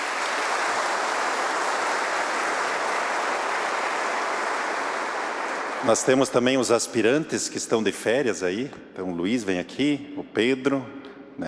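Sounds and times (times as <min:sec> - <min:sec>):
crowd applause: 0:00.0 - 0:06.4
speech: 0:05.8 - 0:11.4.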